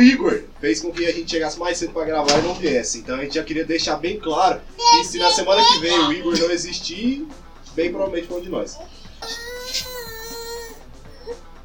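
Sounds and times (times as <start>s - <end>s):
speech: 0.0s - 9.9s
person fake crying with exaggerated sobbing wail: 4.8s - 6.4s, 9.2s - 11.4s
whimpering sniffles: 8.7s - 11.5s.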